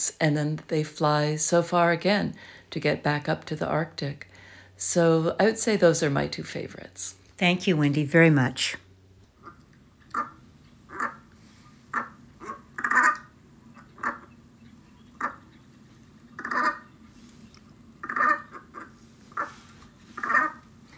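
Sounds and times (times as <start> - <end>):
speech: 0.0 - 8.8
brant sea goose calling in short throaty honks: 11.9 - 13.2, 16.4 - 16.9, 18.0 - 19.5, 20.2 - 20.6.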